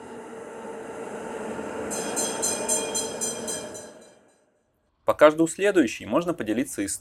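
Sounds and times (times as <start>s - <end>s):
tram rumbling past: 0.0s - 4.5s
speech: 5.1s - 6.9s.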